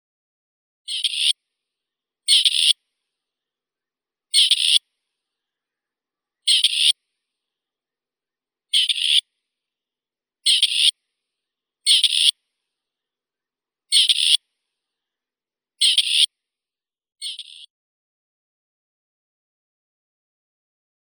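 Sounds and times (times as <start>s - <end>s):
grey partridge Perdix perdix calling: 0.9s - 1.3s, 2.3s - 2.8s, 4.3s - 4.8s, 6.4s - 7.0s, 8.8s - 9.2s, 10.5s - 10.9s, 11.9s - 12.3s, 13.9s - 14.4s, 15.8s - 16.3s, 17.2s - 17.7s.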